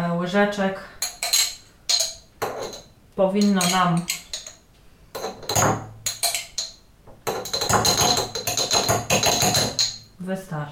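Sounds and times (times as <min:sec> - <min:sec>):
speech: 0:00.3 - 0:01.0, 0:03.2 - 0:04.2, 0:05.6 - 0:05.9, 0:10.2 - 0:10.7
spoon scraping and clinking against a mustard jar and small dish: 0:01.0 - 0:04.6, 0:05.2 - 0:10.1.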